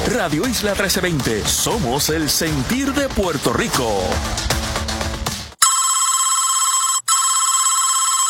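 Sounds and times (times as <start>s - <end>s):
music: 0.0s - 5.6s
speech: 0.1s - 4.6s
telephone ringing with an electronic trill: 5.6s - 8.2s.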